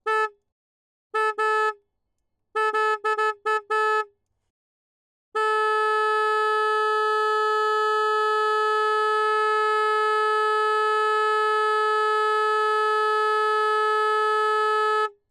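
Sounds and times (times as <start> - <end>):
Harley Davidson V Rod Night Rod 2014 motorcycle horn: 0.0 - 0.4, 1.2 - 1.8, 2.6 - 4.1, 5.4 - 15.2.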